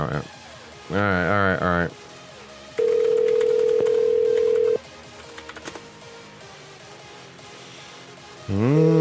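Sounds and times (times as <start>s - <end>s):
speech: 0.0s - 2.0s, 8.5s - 8.9s
ringing tone on an outgoing telephone call: 2.8s - 4.8s.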